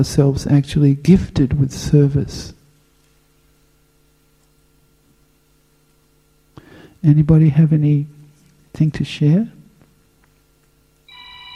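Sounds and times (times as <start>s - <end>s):
speech: 0.0s - 2.6s, 7.0s - 8.2s, 8.8s - 9.6s
quiet hum: 0.0s - 11.5s
electronic telephone ringing with multi-tone trill: 11.1s - 11.5s.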